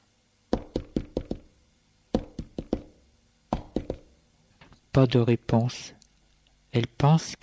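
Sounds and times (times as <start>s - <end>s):
knocking on a bedroom door in Lyon: 0.5s - 1.5s, 2.1s - 4.2s
speech: 5.0s - 6.0s, 6.8s - 7.4s.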